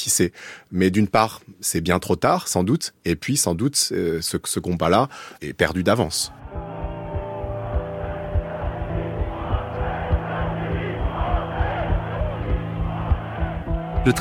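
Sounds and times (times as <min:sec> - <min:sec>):
speech: 0:00.0 - 0:07.0
large crowd shouting and roaring at a political demonstration: 0:06.5 - 0:14.1.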